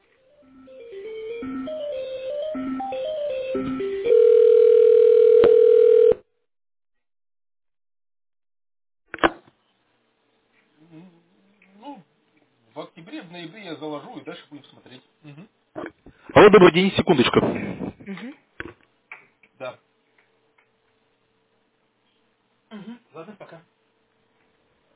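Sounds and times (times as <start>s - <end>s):
steady telephone line tone: 1.4s - 6.3s
telephone line electronic beeps while a call is connected: 2.5s - 6.2s
telephone line click: 3.6s - 6.2s
speech: 16.4s - 17.8s.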